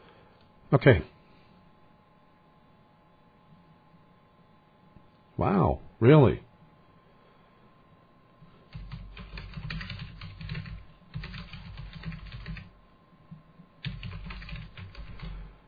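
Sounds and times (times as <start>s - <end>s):
speech: 0.7s - 1.2s, 5.4s - 6.4s
rapid typing on a computer keyboard: 8.7s - 12.7s, 13.8s - 15.4s.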